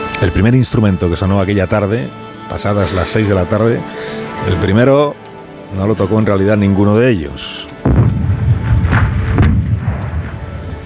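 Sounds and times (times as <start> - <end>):
speech: 0.2 - 7.7
Russian artillery fire rumble: 7.8 - 10.8.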